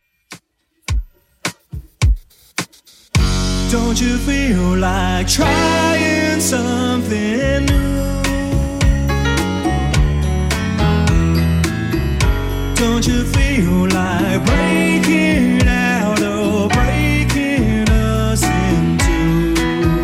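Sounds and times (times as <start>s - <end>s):
80s style music loop at 106 bpm: 0.2s - 20.0s.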